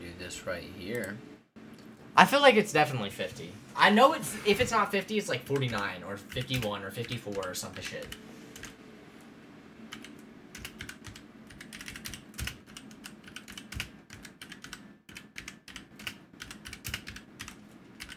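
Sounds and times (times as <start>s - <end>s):
speech: 0.3s - 1.3s, 2.2s - 8.3s
typing on a computer keyboard: 5.4s - 8.7s, 9.9s - 18.1s.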